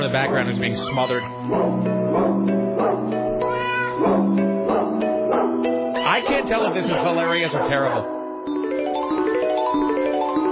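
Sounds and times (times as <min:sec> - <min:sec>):
steady backing music: 0:00.0 - 0:10.5
speech: 0:00.1 - 0:02.6, 0:06.2 - 0:08.2
cat meows pitched into a jingle tune: 0:03.4 - 0:04.0.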